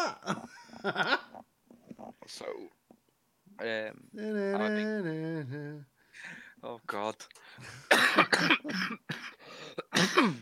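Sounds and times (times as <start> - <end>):
speech: 0.1 - 1.2, 3.6 - 5.6, 6.2 - 9.0
person with a persistent cough coughing: 7.9 - 10.4.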